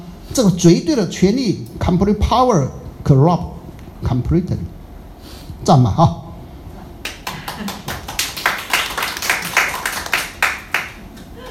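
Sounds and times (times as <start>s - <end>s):
speech: 0.4s - 4.8s, 5.6s - 6.2s
audience clapping: 7.0s - 11.3s.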